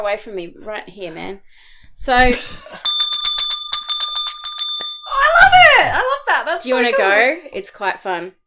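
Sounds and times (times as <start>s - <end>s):
speech: 0.0s - 2.9s, 5.5s - 8.4s
bright bell ringing in rapid strikes: 2.8s - 5.7s.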